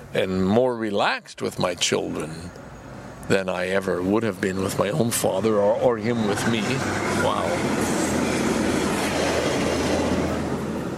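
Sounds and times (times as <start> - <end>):
speech: 0.1 - 2.7, 3.3 - 8.0
short passenger train passing on tracks by Lake Ontario: 3.8 - 10.9
thin metallic squeal of train wheels: 5.8 - 9.4.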